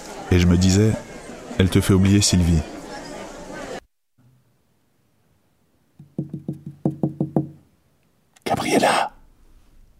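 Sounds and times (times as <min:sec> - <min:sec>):
speech: 0:00.3 - 0:02.8
firm knocking on a locked wooden bedroom door: 0:06.0 - 0:07.6.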